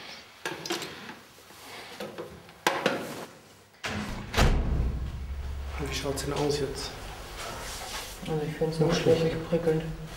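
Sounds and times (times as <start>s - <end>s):
door knocks and clatters: 3.8s - 5.2s
heavy thud: 3.8s - 7.5s
low rumbling shuffle: 4.0s - 9.0s
speech: 5.9s - 7.0s, 8.2s - 10.1s.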